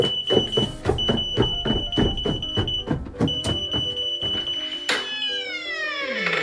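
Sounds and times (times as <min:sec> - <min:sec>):
rapid rhythmic clattering: 0:00.0 - 0:04.6
shrill smoke alarm blaring: 0:00.0 - 0:06.3.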